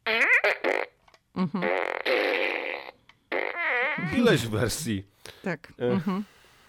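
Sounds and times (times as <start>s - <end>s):
electronic fart noises from a megaphone-shaped toy fart machine: 0.0s - 4.5s
speech: 1.4s - 1.8s, 4.1s - 6.4s.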